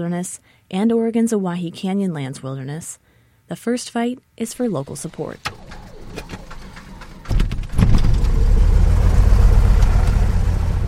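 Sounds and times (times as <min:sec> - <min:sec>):
speech: 0:00.0 - 0:06.4
small airplane engine starting: 0:05.4 - 0:10.8.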